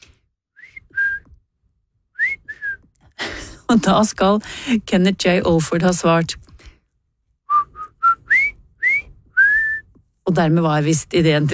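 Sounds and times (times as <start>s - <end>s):
golfer whistling a two-note phrase: 0.6s - 1.3s, 2.2s - 2.8s, 7.5s - 9.9s
speech: 3.7s - 6.4s, 10.4s - 11.5s.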